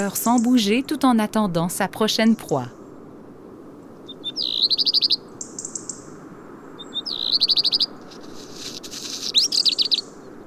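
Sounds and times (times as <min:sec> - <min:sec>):
speech: 0:00.0 - 0:02.8
robin and chaffinches twittering: 0:04.0 - 0:08.0, 0:08.9 - 0:10.2.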